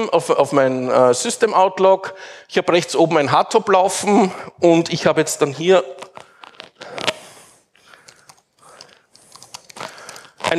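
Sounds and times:
speech: 0.0s - 6.0s
rapid typing on a computer keyboard: 8.0s - 10.3s.

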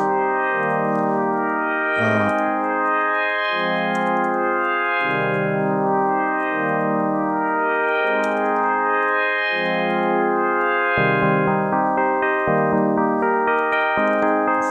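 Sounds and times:
harmonically rich synth playing a repeating sequence with washy reverb: 0.0s - 14.6s.

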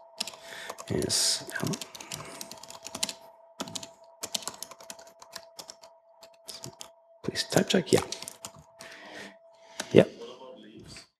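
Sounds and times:
typing on a computer keyboard during a programming session: 0.2s - 6.9s, 8.0s - 8.9s
speech: 0.9s - 2.3s, 7.6s - 8.2s.

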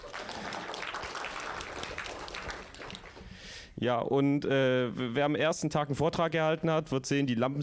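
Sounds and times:
audience applause: 0.0s - 3.3s
speech: 3.8s - 7.6s.

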